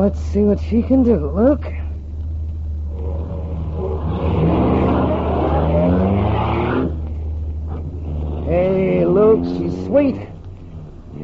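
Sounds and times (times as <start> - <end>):
speech: 0.0 - 1.8, 9.4 - 10.4
souped-up car engine revving and accelerating: 2.8 - 11.2.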